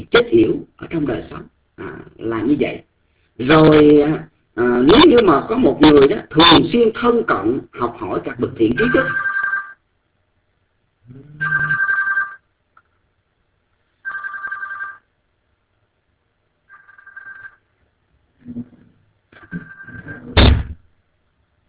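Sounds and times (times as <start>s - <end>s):
speech: 0.0s - 1.6s, 2.3s - 9.3s
telephone with bright electronic ringtone ringing: 8.8s - 9.8s, 11.4s - 12.4s, 14.0s - 15.1s, 16.7s - 17.7s, 19.4s - 20.3s
wooden cabinet door thudding shut: 20.4s - 20.8s.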